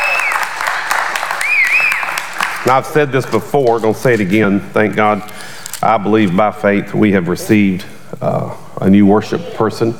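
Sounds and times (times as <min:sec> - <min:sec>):
whistles: 0:00.0 - 0:00.6, 0:01.3 - 0:02.2
audience clapping for two musicians: 0:00.0 - 0:03.0
speech: 0:02.6 - 0:09.9.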